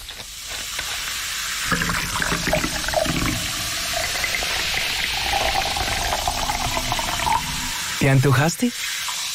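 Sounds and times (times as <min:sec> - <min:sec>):
fizzing bubbles of soda: 0:01.3 - 0:09.3
soda pouring into a glass: 0:01.5 - 0:08.2
speech: 0:08.0 - 0:08.9.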